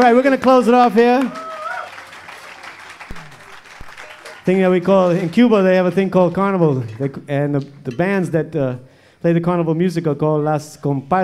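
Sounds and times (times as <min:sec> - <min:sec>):
speech: 0:00.0 - 0:01.4, 0:04.5 - 0:11.2
audience applause after a live rumba number: 0:01.0 - 0:05.5.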